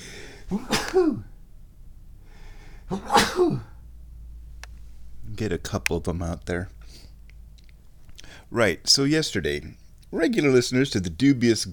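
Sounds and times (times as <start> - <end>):
person sneezing: 0.2 - 1.4, 2.9 - 3.8
speech: 0.5 - 1.3, 2.9 - 3.7, 5.4 - 7.1, 8.5 - 11.7.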